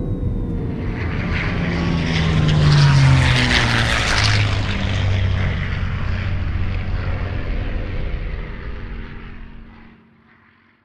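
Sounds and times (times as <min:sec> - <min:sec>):
jet beginning to land: 0:00.0 - 0:10.7.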